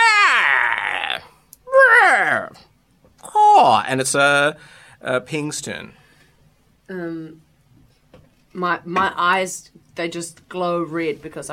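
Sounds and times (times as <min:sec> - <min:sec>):
voice imitating an owl's screech: 0:00.0 - 0:02.6
speech: 0:03.7 - 0:06.0, 0:06.9 - 0:07.5, 0:08.5 - 0:11.5.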